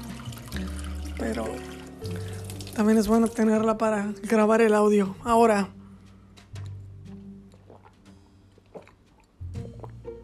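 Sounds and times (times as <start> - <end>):
water poured for drinking: 0.0 - 3.8
speech: 0.6 - 5.8.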